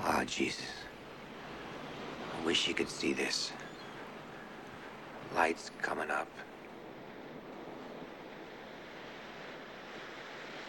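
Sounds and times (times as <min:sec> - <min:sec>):
faint windy rumble: 0:00.0 - 0:10.6
ocean waves breaking on a beach: 0:00.0 - 0:10.6
speech: 0:00.2 - 0:00.9, 0:02.4 - 0:03.6, 0:05.3 - 0:06.5.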